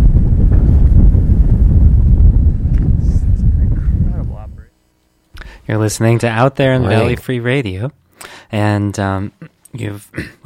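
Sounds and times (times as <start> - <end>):
strong wind buffeting the microphone outdoors: 0.0 - 4.7
speech: 5.7 - 10.4.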